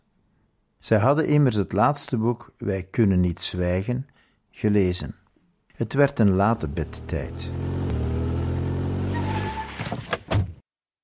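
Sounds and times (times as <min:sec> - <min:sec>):
speech: 0:00.8 - 0:05.2, 0:05.8 - 0:07.9
heavy car engine rumbling: 0:06.4 - 0:09.8.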